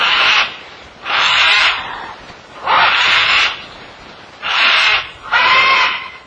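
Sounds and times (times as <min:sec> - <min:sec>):
cockatoo and green-winged macaw screeching on a perch: 0:00.0 - 0:03.6, 0:04.4 - 0:06.2.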